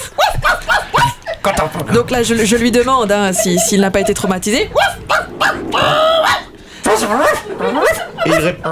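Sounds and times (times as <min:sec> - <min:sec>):
laughter: 0:00.0 - 0:08.7
speech: 0:01.4 - 0:06.1, 0:07.0 - 0:08.7
person's voice imitating whining dog howls: 0:04.7 - 0:06.5.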